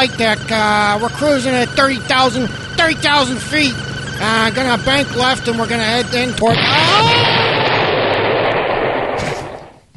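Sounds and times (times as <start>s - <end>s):
speech: 0.0s - 7.6s
huge midair explosion: 6.5s - 9.8s.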